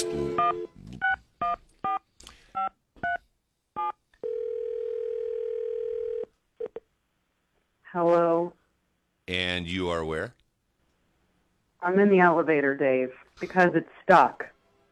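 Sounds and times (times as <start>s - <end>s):
steady telephone tone: 0.0s - 2.0s, 3.8s - 6.7s
speech: 9.3s - 10.4s, 11.8s - 14.5s.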